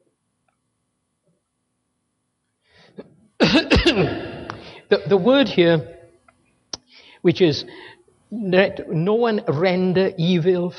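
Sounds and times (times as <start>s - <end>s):
speech: 2.9s - 4.2s, 5.1s - 6.0s, 7.2s - 10.7s
loud harsh coughs: 2.9s - 4.8s
gravelly clearing of the throat: 3.0s - 4.7s.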